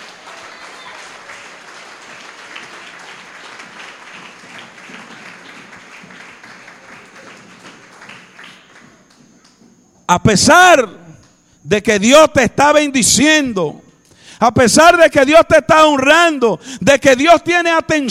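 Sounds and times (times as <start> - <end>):
church congregation applauding: 0.0 - 9.8
speech: 10.1 - 11.0, 11.7 - 13.8, 14.4 - 18.0.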